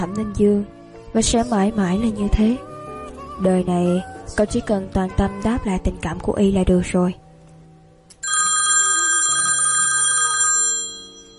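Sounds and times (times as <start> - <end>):
speech: 0.0 - 2.7, 3.4 - 7.2
mobile phone ringing in a trouser pocket with a bright electronic ringtone: 8.2 - 11.3.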